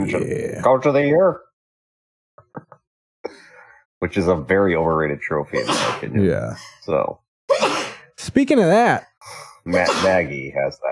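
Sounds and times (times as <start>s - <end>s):
speech: 0.0s - 1.5s, 4.0s - 10.9s
sharp sneeze: 5.6s - 6.1s, 7.5s - 8.1s, 9.7s - 10.3s.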